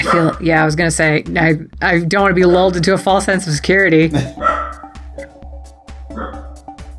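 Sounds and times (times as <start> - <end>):
dog barking: 0.0 - 0.4, 4.4 - 4.9, 6.1 - 6.6
speech: 0.1 - 4.5.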